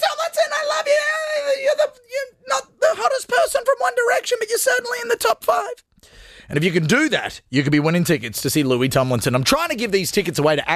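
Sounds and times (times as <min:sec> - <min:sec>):
person imitating an excited fan's high-pitched scream: 0:00.0 - 0:05.8
speech: 0:04.7 - 0:05.9, 0:06.5 - 0:10.7.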